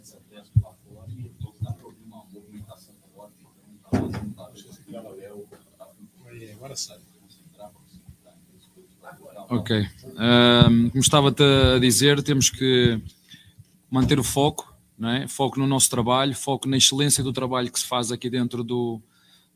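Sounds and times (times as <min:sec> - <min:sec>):
indistinct voices murmuring: 0:00.0 - 0:11.9
door shutting with a thud: 0:03.9 - 0:04.5
speech: 0:06.6 - 0:07.0, 0:09.5 - 0:13.2, 0:13.9 - 0:19.5.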